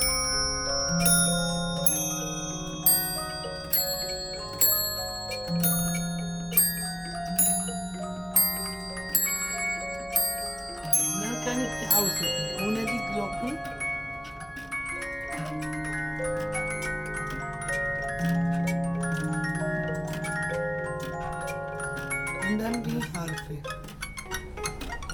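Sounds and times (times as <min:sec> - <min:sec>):
mechanical music player striking a set of ten bells: 0:00.0 - 0:25.1.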